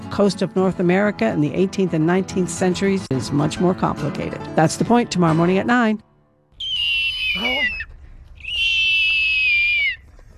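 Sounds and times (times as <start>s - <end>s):
speech: 0.2s - 6.1s, 7.4s - 7.8s
person from Falmouth imitating a hawk's shrill screeching call: 6.6s - 10.0s.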